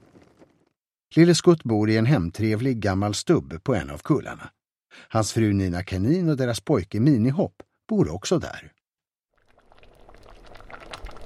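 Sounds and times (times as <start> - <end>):
speech: 1.1 - 8.8
carrot juice boiling in a kitchen pot: 9.4 - 11.2.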